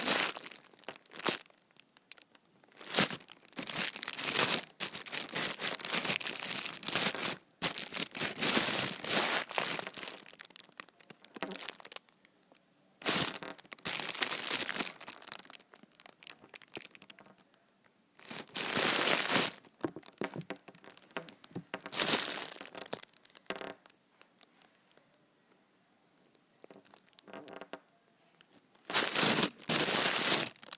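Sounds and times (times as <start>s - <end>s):
big plastic trash bag crinkling and crackling: 0.0s - 12.1s, 13.0s - 17.2s, 18.2s - 23.5s, 28.8s - 30.7s.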